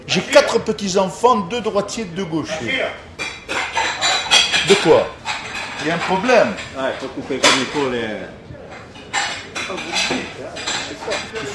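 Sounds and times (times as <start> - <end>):
speech: 0.1 - 3.1, 4.7 - 5.2, 5.8 - 8.5
cutlery clinking and clattering as it is laid out on tables: 2.5 - 11.5.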